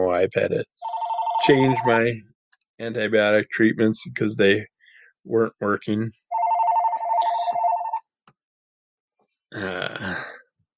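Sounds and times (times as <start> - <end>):
speech: 0.1 - 0.8, 1.4 - 6.2, 9.5 - 10.3
telephone ringing in a steady electronic tone: 0.8 - 2.0, 6.3 - 8.0.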